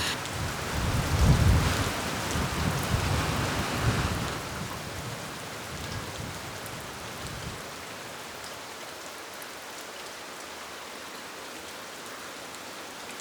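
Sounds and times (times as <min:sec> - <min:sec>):
heavy rain pouring: 0:00.0 - 0:10.1.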